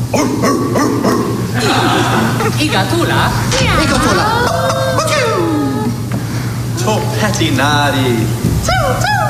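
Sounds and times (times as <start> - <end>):
small dog barking: 0.1 - 1.4
speech: 0.1 - 5.1, 6.8 - 9.2
laughter: 1.5 - 5.9.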